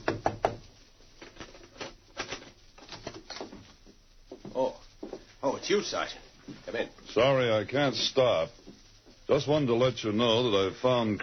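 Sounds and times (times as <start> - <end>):
knocking on a wooden door: 0.0 - 0.7
shuffling: 0.6 - 11.2
speech: 5.6 - 8.6, 9.3 - 11.2.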